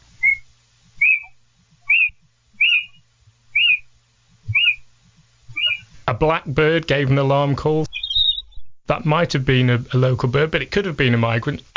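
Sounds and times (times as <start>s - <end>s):
little owl whistled calls at night in a garden: 0.2s - 3.9s, 4.5s - 4.9s, 5.5s - 6.0s, 7.9s - 8.7s
speech: 6.2s - 8.0s, 8.9s - 11.7s.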